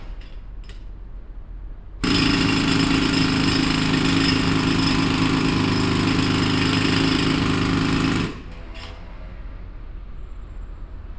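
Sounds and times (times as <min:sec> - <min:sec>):
pneumatic drill: 0:00.0 - 0:01.0, 0:02.0 - 0:09.3.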